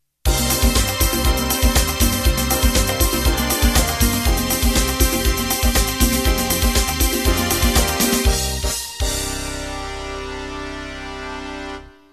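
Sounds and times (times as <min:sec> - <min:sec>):
disco jazz music ending: 0:00.3 - 0:12.1.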